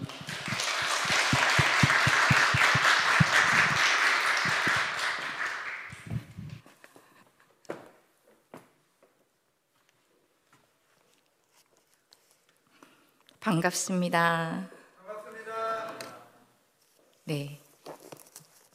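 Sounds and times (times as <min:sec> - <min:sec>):
crowd applauding a speaker: 0:00.0 - 0:06.5
speech: 0:13.5 - 0:14.8, 0:17.3 - 0:17.6.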